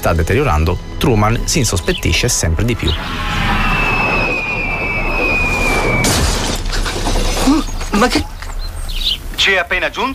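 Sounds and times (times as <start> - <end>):
speech: 0.0 - 3.8, 8.0 - 8.3, 9.4 - 10.1
high whistling tone of a falling stage spotlight: 2.8 - 6.4
stage spotlight crashing down with shattering debris: 5.6 - 7.4.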